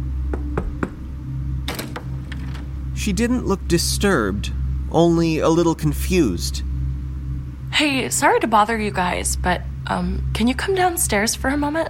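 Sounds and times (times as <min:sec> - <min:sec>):
low steady hum: 0:00.0 - 0:11.8
knocking on a door: 0:00.3 - 0:01.1
speech: 0:03.0 - 0:06.7, 0:07.8 - 0:11.8.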